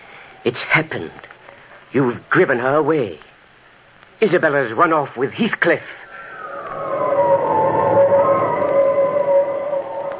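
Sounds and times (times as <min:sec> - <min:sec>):
speech: 0:00.4 - 0:01.3, 0:01.9 - 0:03.3, 0:04.2 - 0:06.0
howling wind: 0:06.0 - 0:10.1.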